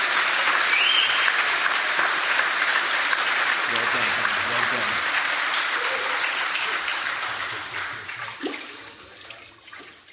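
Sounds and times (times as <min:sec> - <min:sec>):
crowd applauding after a baptism: 0:00.0 - 0:08.8.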